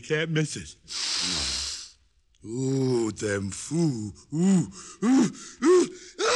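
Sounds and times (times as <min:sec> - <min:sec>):
speech: 0:00.0 - 0:01.4, 0:02.4 - 0:06.0
quick rising gasping inhales: 0:00.9 - 0:02.0, 0:04.6 - 0:06.2.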